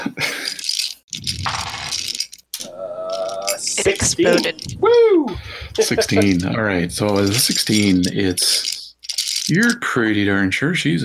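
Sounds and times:
d8 and d6 dice rattling across a hard tabletop: 0:01.1 - 0:04.5
speech: 0:03.8 - 0:08.7, 0:09.5 - 0:11.0.

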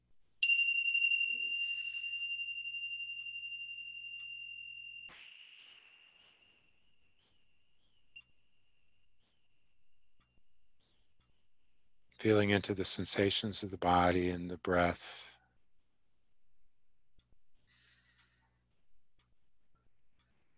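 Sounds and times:
meditation bell ringing: 0:00.4 - 0:08.1
speech: 0:12.2 - 0:15.3.

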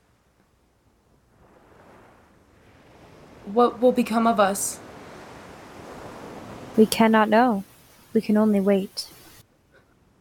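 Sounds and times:
faint wind: 0:00.0 - 0:10.1
gentle waves lapping at a shore: 0:01.4 - 0:09.4
speech: 0:03.4 - 0:04.8, 0:06.8 - 0:09.2.

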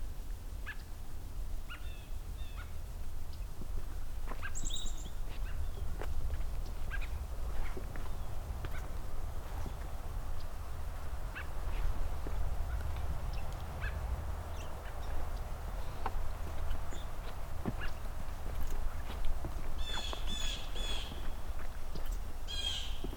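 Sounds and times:
low outdoor rumble: 0:00.0 - 0:23.1
blue jay calling: 0:01.7 - 0:02.8, 0:04.3 - 0:05.9, 0:06.6 - 0:18.2, 0:19.7 - 0:21.4, 0:22.5 - 0:23.1
American robins calling to each other: 0:04.3 - 0:23.1.

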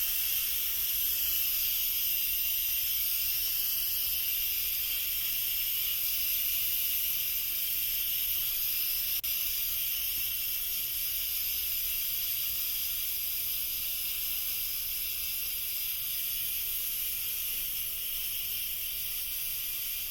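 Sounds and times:
steam hissing out of giant soda: 0:00.0 - 0:20.0.

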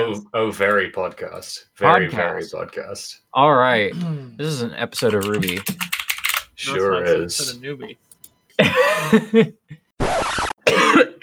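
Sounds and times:
speech: 0:00.1 - 0:05.9, 0:06.6 - 0:10.2
person coughing deliberately: 0:08.6 - 0:09.4, 0:10.6 - 0:11.2.

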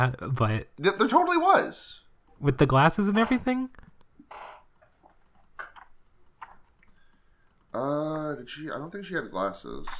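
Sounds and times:
speech: 0:00.0 - 0:04.5, 0:07.7 - 0:09.9
faint key clicks typing on a computer keyboard: 0:04.7 - 0:07.9.

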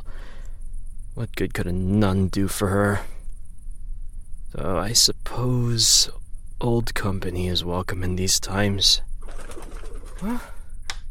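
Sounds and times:
faint low rumble: 0:00.0 - 0:11.0
speech: 0:01.2 - 0:03.2, 0:04.6 - 0:10.6
bird cooing late at night: 0:09.3 - 0:10.6.

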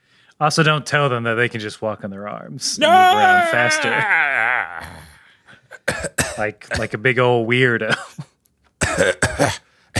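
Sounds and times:
speech: 0:00.4 - 0:05.0, 0:06.4 - 0:08.3, 0:09.0 - 0:09.6
person speaking in an exaggerated swooping voice: 0:02.8 - 0:04.1
rough coughing and throat clearing: 0:05.7 - 0:07.0, 0:07.8 - 0:09.9.

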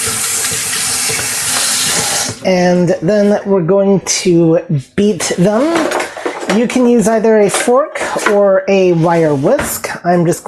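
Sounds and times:
tap water running while hands are rinsed of raw egg: 0:00.0 - 0:02.6
speech: 0:02.4 - 0:10.4.

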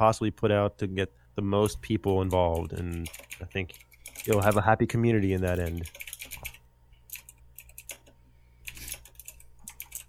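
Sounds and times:
speech: 0:00.0 - 0:06.1
low steady hum: 0:00.0 - 0:10.0
typing on a computer keyboard: 0:02.1 - 0:04.6, 0:05.4 - 0:08.1, 0:08.7 - 0:10.0.

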